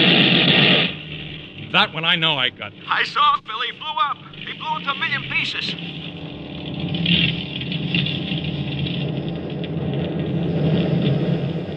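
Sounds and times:
fighter plane engines droning in flight: 0:00.0 - 0:11.7
speech: 0:01.8 - 0:06.0.

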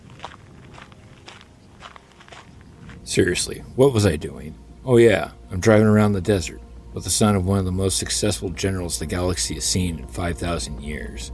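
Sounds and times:
person's footsteps walking away around a corner: 0:00.0 - 0:03.2
low hiss: 0:00.0 - 0:11.3
speech: 0:03.1 - 0:11.3.

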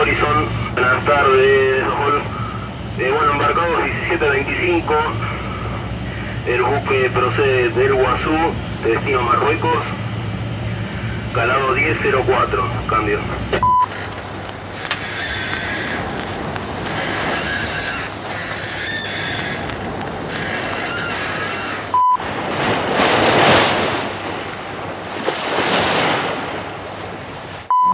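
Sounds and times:
surf washing against a moving boat's bow at sea in a swell: 0:00.0 - 0:27.9
speech: 0:00.4 - 0:02.4, 0:03.0 - 0:05.3, 0:06.4 - 0:10.0, 0:11.4 - 0:13.7
wind noise on microphone: 0:13.9 - 0:27.3.

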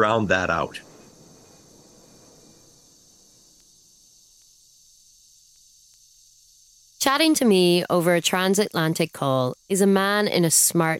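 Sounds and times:
speech: 0:00.0 - 0:00.9, 0:07.0 - 0:10.9
cicadas buzzing: 0:00.0 - 0:10.9
faint clicks: 0:03.5 - 0:03.7.

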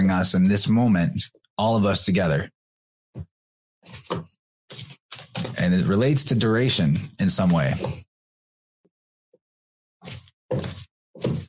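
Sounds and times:
speech: 0:00.1 - 0:02.6, 0:03.2 - 0:04.9, 0:05.5 - 0:08.1, 0:10.0 - 0:11.4
tarot cards being shuffled: 0:03.9 - 0:05.6.

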